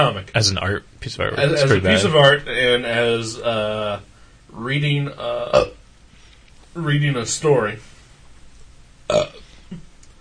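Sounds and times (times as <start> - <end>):
speech: 0.0 - 5.8, 6.8 - 7.9, 9.1 - 9.8
person burping: 5.3 - 5.8, 9.1 - 9.8.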